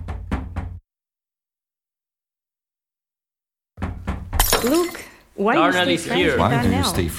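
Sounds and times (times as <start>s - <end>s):
quick solid knocks on a door: 0.0s - 0.8s, 3.8s - 4.5s
speech: 4.6s - 7.1s.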